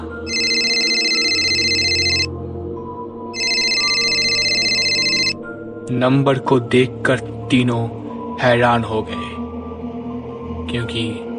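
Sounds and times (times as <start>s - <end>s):
phone ringing with a bright trilling tone: 0.3s - 2.3s, 3.4s - 5.4s
speech: 5.9s - 9.3s, 10.7s - 11.3s.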